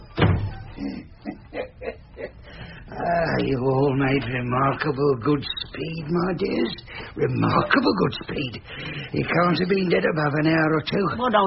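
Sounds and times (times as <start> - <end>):
door shutting with a solid thud: 0.1 - 0.7
speech: 3.4 - 11.4.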